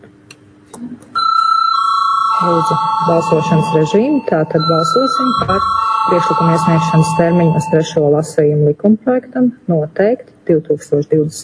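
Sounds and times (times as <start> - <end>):
speech: 0.0 - 1.2, 2.4 - 11.4
electric bell ringing in a parliamentary chamber to call a vote: 1.2 - 8.0.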